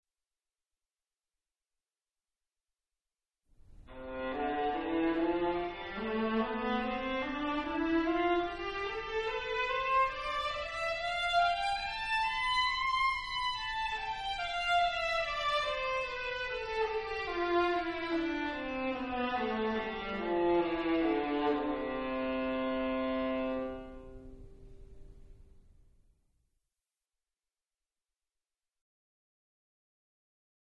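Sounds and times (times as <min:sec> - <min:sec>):
music in C major: 0:03.7 - 0:25.4.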